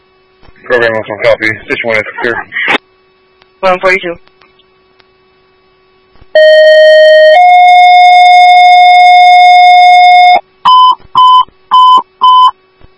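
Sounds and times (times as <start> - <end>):
speech: 0.6 - 2.7, 3.6 - 4.3
ambulance dispatch two-tone pager alert: 6.4 - 12.5
short pager beeps: 6.4 - 12.6.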